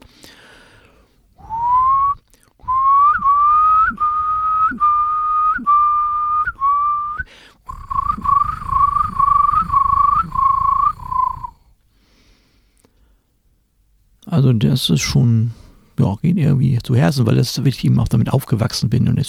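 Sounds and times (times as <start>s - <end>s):
person whistling an imitation of curlew song: 1.4s - 11.6s
speech: 14.8s - 19.2s.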